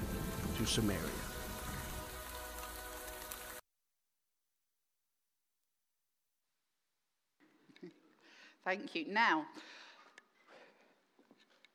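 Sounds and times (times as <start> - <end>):
loud dense rain pouring: 0.0 - 3.6
speech: 0.6 - 1.2, 8.7 - 9.8.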